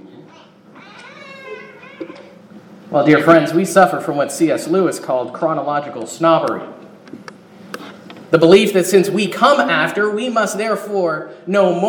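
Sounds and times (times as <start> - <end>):
cat meowing: 0.4 - 2.3
speech: 2.9 - 6.8, 8.3 - 11.8.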